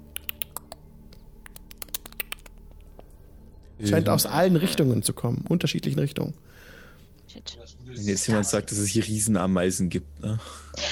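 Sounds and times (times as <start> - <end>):
faint irregular sharp little clicks in the dark: 0.0 - 0.8, 1.4 - 2.9
low steady hum: 0.0 - 10.9
speech: 3.8 - 6.7, 7.3 - 10.6.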